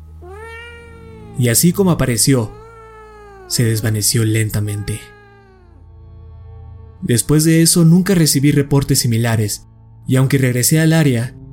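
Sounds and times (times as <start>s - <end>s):
strange drawn-out cat meow: 0.2s - 5.8s
speech: 1.4s - 2.6s, 3.5s - 5.2s, 7.1s - 11.4s.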